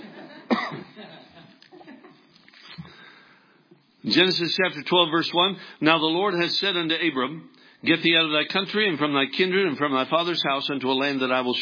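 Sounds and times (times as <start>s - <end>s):
sharp cough from allergies: 0.5s - 1.0s
speech: 4.0s - 11.6s.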